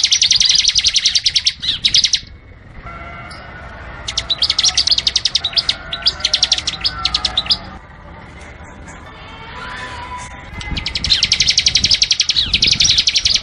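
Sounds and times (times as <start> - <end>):
Bar-winged prinia singing rapid high clipped chirps: 0.0 - 2.5, 4.0 - 7.8, 10.5 - 13.4.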